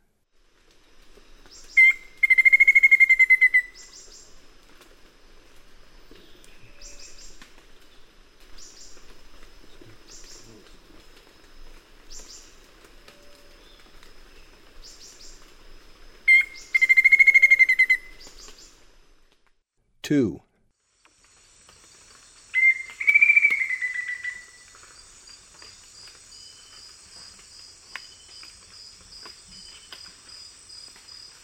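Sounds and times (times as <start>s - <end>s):
black-faced antthrush calling: 1.8s - 3.9s, 16.3s - 18.2s, 22.6s - 24.6s
speech: 20.1s - 20.4s.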